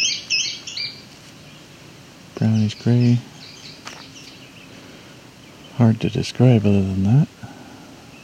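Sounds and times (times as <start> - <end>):
small sparrow-like bird chirping: 0.0 - 1.8, 2.4 - 6.6
hiss: 0.0 - 8.2
speech: 2.4 - 3.3, 5.8 - 7.4.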